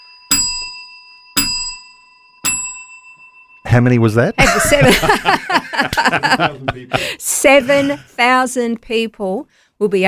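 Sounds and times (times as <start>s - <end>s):
hand bell ringing: 0.0s - 5.9s
speech: 3.7s - 10.0s
laughter: 4.4s - 8.0s.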